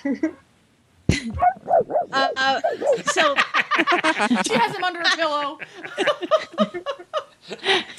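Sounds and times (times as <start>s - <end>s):
speech: 0.0s - 0.5s, 1.1s - 7.9s
short voiced sounds: 1.3s - 3.2s
small dog yapping: 1.3s - 3.2s
laughter: 2.6s - 7.2s.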